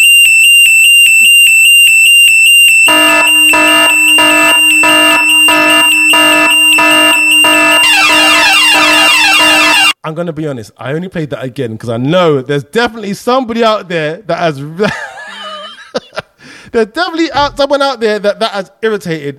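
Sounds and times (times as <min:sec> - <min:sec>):
loud piercing electronic alarm pulsing: 0:00.0 - 0:10.0
speech: 0:10.2 - 0:15.1, 0:16.7 - 0:19.3
laughter: 0:14.8 - 0:16.3.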